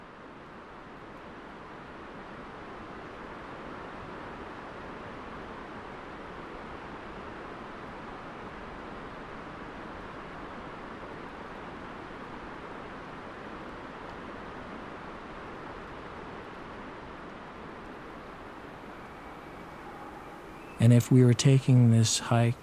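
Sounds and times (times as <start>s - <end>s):
distant rainforest river rushing and echoing across valley: 1.6s - 22.6s
speech: 20.8s - 22.6s.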